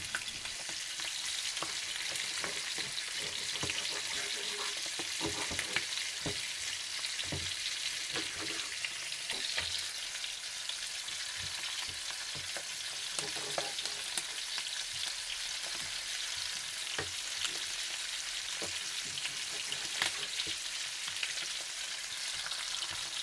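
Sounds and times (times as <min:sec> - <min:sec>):
pieces of food frying in a pan of half butter, half olive oil: 0:00.0 - 0:23.2
stirring scrapes in a pan: 0:01.6 - 0:06.4, 0:08.0 - 0:09.4, 0:13.1 - 0:14.4, 0:18.6 - 0:20.6.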